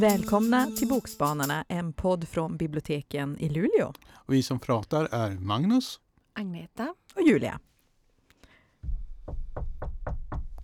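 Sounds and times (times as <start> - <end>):
speech: 0.0 - 7.7
firm knocking on a door: 8.9 - 10.6.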